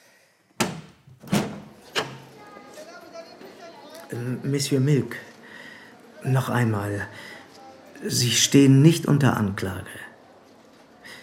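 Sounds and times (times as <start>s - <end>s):
window latch and frame clunking as a window is opened: 0.6s - 2.3s
speech: 4.1s - 5.3s, 6.2s - 7.3s, 8.0s - 10.0s.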